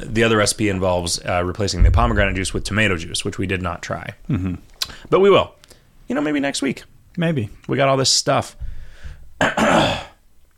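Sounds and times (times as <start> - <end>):
speech: 0.2 - 8.6
person clearing throat: 9.4 - 10.2.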